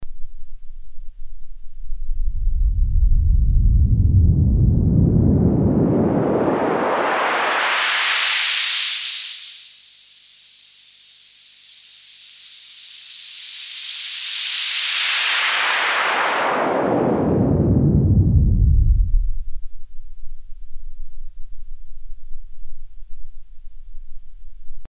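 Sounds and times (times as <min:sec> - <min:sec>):
band-pass filtered noise: 0:00.1 - 0:21.1.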